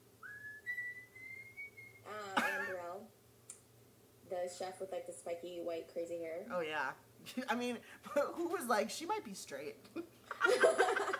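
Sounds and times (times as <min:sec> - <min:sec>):
person whistling one long note: 0:00.2 - 0:02.1
speech: 0:04.5 - 0:10.9
laughter: 0:10.3 - 0:11.1.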